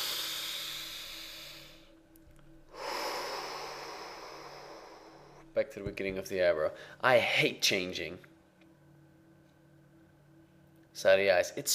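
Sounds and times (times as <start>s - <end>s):
long steady hissing exhale: 0.0s - 1.9s, 2.7s - 5.4s
loud airy deep breath inhale: 0.0s - 2.0s, 2.7s - 5.5s
speech: 5.6s - 8.3s, 11.0s - 11.7s.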